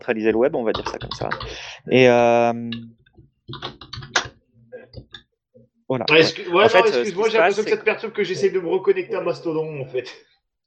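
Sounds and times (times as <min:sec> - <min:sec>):
speech: 0:00.0 - 0:03.8, 0:05.9 - 0:10.3
computer keyboard typing: 0:00.7 - 0:01.7, 0:03.5 - 0:04.3.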